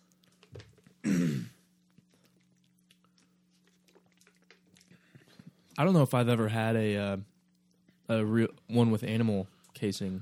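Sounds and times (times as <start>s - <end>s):
throat clearing after something caught in throat: 1.0s - 1.6s
speech: 5.8s - 7.3s, 8.1s - 10.1s.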